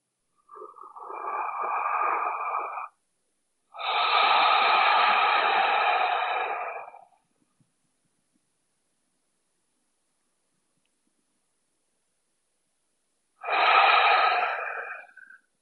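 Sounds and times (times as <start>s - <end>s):
deep breaths through the nose inhaling a scent from the wrists: 0.5s - 3.0s, 3.8s - 7.2s, 13.4s - 15.4s.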